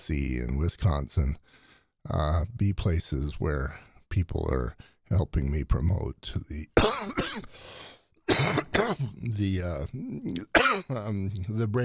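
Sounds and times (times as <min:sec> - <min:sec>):
speech: 0:00.0 - 0:11.8
person coughing: 0:06.8 - 0:07.6, 0:08.3 - 0:09.3, 0:10.1 - 0:11.2.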